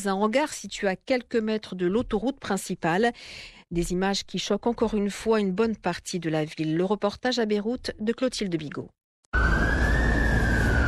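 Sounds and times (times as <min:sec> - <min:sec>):
speech: 0:00.0 - 0:09.5
ambulance siren wailing at the port of Beirut: 0:09.4 - 0:10.8.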